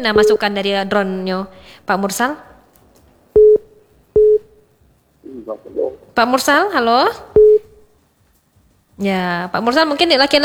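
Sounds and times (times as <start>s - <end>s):
phone busy tone beeps after a dropped call: 0.0s - 0.5s, 3.4s - 4.6s, 7.4s - 7.8s
speech: 0.0s - 2.5s, 5.5s - 7.4s, 9.0s - 10.4s.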